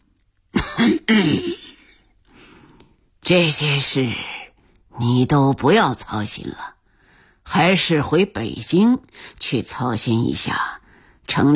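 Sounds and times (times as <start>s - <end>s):
heavyset man coughing heavily: 0.6s - 1.8s
speech: 0.8s - 1.7s, 3.3s - 4.3s, 5.0s - 6.8s, 7.5s - 11.5s.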